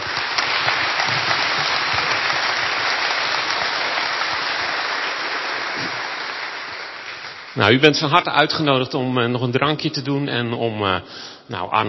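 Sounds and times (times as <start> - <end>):
audience applause: 0.0 - 8.1
speech: 7.6 - 11.8.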